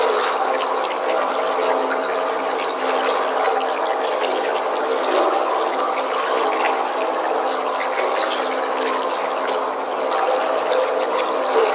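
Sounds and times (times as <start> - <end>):
water in a tunnel: 0.0 - 11.7.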